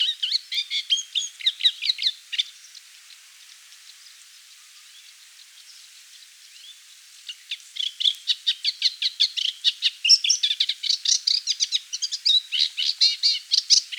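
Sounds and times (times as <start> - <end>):
Moustached warbler song: 0.0 - 13.9.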